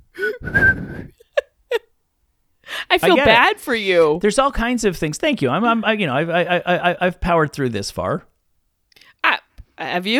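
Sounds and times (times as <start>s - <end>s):
person whistling with a breathy, unsteady tone: 0.2s - 1.2s
speech: 3.0s - 8.3s, 9.8s - 10.1s.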